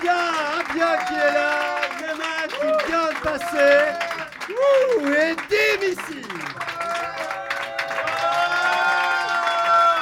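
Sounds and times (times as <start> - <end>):
audience clapping: 0.0 - 9.9
speech: 3.4 - 6.4.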